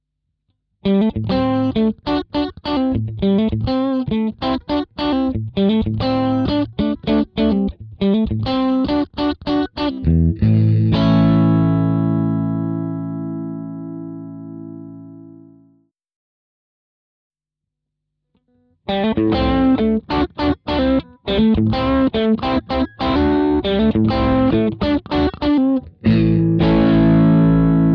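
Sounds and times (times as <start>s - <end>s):
tweed guitar amp tone with boost: 0.9s - 15.6s, 18.9s - 27.9s.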